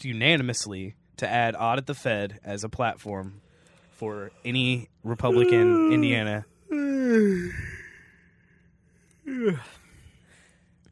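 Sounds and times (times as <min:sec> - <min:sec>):
speech: 0:00.0 - 0:03.4, 0:04.0 - 0:06.5, 0:07.1 - 0:07.7, 0:09.4 - 0:09.8
person yawning: 0:05.2 - 0:08.2, 0:09.2 - 0:09.9.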